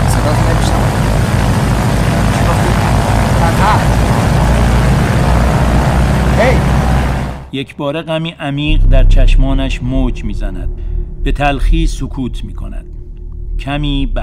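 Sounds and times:
small propeller plane engine droning: 0.0s - 7.5s
speech: 7.6s - 13.0s, 13.6s - 14.2s.

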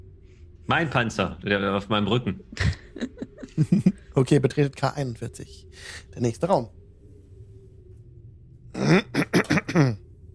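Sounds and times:
speech: 0.7s - 6.8s, 9.8s - 10.0s
laughter: 2.6s - 4.1s
throat clearing: 8.8s - 10.0s.

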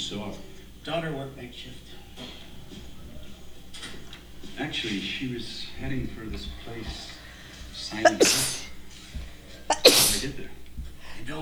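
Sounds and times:
speech: 0.0s - 2.8s, 4.6s - 7.2s, 7.8s - 8.6s, 10.2s - 10.6s, 11.2s - 11.3s
person sneezing: 8.0s - 8.7s, 9.7s - 10.3s.

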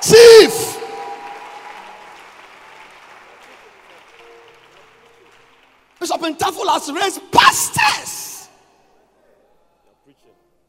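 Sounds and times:
crowd applause: 0.0s - 7.0s
speech: 6.2s - 8.2s.

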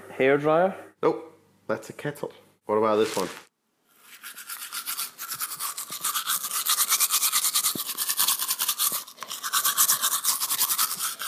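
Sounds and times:
speech: 0.2s - 3.5s
brushing teeth with a toothbrush: 3.0s - 11.2s.

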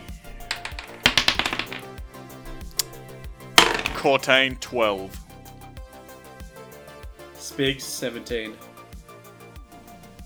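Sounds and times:
soft music: 0.0s - 10.2s
dice rolled by players clattering across a hard surface: 0.5s - 1.8s
speech: 4.0s - 5.2s, 7.5s - 8.7s.

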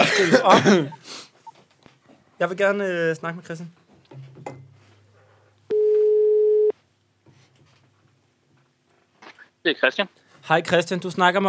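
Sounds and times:
laughter: 0.0s - 1.0s
speech: 0.2s - 1.2s, 2.4s - 4.2s, 9.6s - 11.4s
telephone ringing tone: 5.7s - 6.7s.

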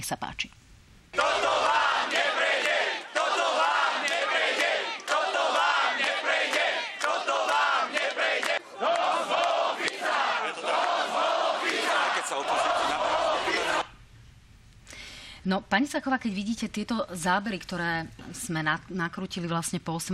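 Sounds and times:
speech: 0.0s - 1.4s, 15.4s - 20.1s
large crowd chanting and shouting in unison at opposition street protest: 1.1s - 13.9s.

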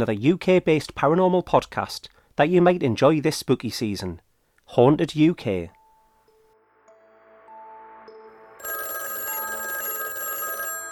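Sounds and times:
speech: 0.0s - 5.8s
telephone bell ringing with a harsh metallic jangle: 8.6s - 10.9s.

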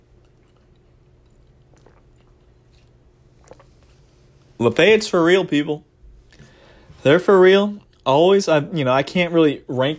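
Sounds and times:
low steady hum: 0.0s - 9.9s
person sipping tea: 0.3s - 4.2s
speech: 4.6s - 5.9s, 7.0s - 9.9s.

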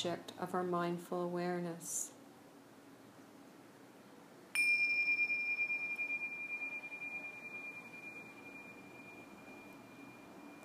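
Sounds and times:
speech: 0.0s - 2.2s
meditation bell ringing: 4.6s - 10.6s.

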